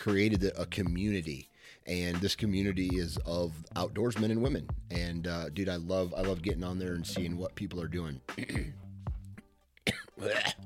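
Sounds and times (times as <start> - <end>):
speech: 0.0 - 8.8, 10.2 - 10.6
faint coughing from something caught in the throat: 8.3 - 8.8, 9.8 - 10.6
raspy throat clearing: 8.3 - 8.8, 9.8 - 10.6.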